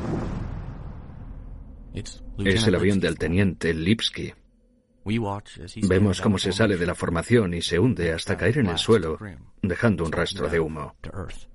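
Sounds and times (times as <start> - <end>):
deep explosion in the sky amid bomber formation: 0.0 - 2.4
heavy low rumble: 0.0 - 3.7
speech: 2.0 - 4.4, 5.0 - 11.5.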